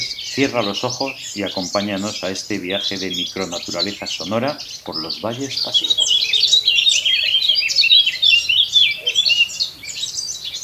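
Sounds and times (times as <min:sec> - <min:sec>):
male Eurasian blackcap singing a fluting warble in the Pas valleys: 0:00.0 - 0:10.6
speech: 0:00.4 - 0:06.3.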